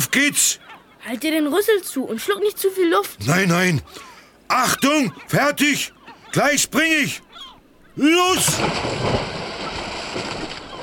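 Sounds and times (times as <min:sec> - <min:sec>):
speech: 0:00.1 - 0:07.4, 0:08.0 - 0:09.3
huge wave of churning water and spray washing over a ship: 0:08.0 - 0:10.8.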